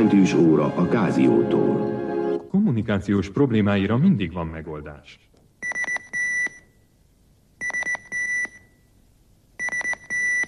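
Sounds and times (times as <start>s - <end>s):
speech: 0.0s - 2.0s, 2.6s - 5.3s
Nokia operator pager beeping: 5.6s - 6.6s, 7.6s - 8.7s, 9.6s - 10.4s.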